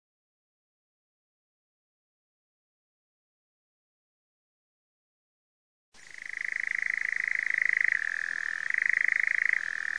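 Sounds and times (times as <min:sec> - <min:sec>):
nightjar: 0:06.0 - 0:09.9.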